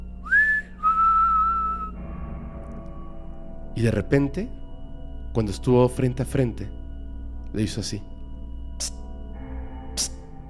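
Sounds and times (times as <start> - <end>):
person whistling two sustained clear notes while walking: 0.2 - 2.0
speech: 3.8 - 4.6, 5.3 - 6.8, 7.5 - 8.1, 8.8 - 9.0.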